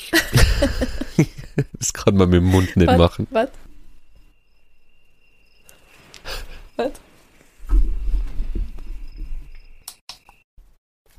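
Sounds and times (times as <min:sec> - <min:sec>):
laughter: 0:00.1 - 0:03.3
speech: 0:02.1 - 0:03.6, 0:06.8 - 0:07.0
daylight alarm clock playing electronic cricket chirp: 0:02.4 - 0:07.0, 0:08.6 - 0:10.5
rustling: 0:03.5 - 0:09.5.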